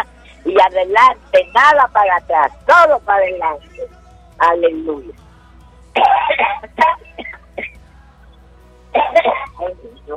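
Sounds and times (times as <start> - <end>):
speech: 0.5 - 5.2, 6.0 - 7.3, 9.1 - 10.1
person clearing throat: 6.0 - 7.8, 9.0 - 9.7
person coughing in harsh raspy bursts: 6.0 - 7.8, 9.0 - 9.7.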